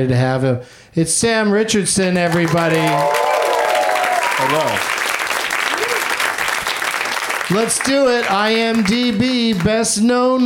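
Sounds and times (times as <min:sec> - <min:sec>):
speech: 0:00.0 - 0:03.4, 0:04.4 - 0:05.0, 0:07.5 - 0:10.4
audience applause: 0:02.2 - 0:10.0.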